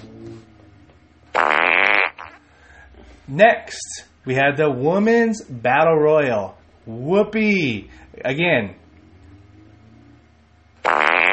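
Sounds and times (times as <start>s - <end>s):
loud buzzy fart noise: 1.4s - 2.4s, 10.8s - 11.3s
speech: 3.3s - 8.8s.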